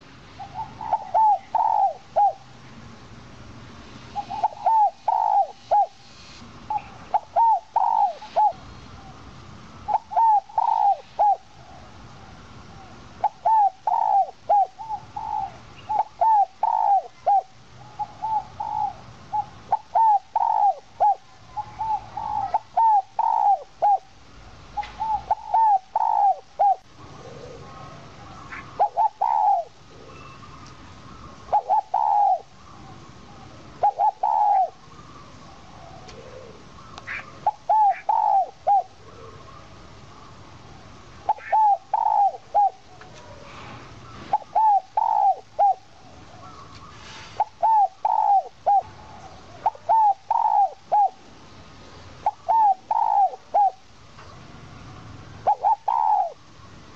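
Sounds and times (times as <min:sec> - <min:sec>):
owl call: 0:00.4 - 0:02.4, 0:04.2 - 0:06.0, 0:06.7 - 0:08.6, 0:09.9 - 0:11.5, 0:13.2 - 0:24.1, 0:24.8 - 0:30.6, 0:31.4 - 0:39.7, 0:41.2 - 0:43.4, 0:44.3 - 0:51.2, 0:52.2 - 0:53.8, 0:55.4 - 0:56.4.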